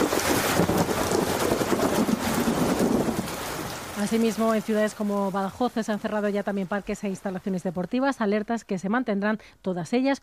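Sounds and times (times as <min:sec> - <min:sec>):
gusty wind-like roar: 0:00.0 - 0:04.5
faint low thunder rumble: 0:00.0 - 0:04.7
heavy rain pouring in Mérida Extremadura Spain: 0:00.0 - 0:07.8
speech: 0:04.0 - 0:10.2.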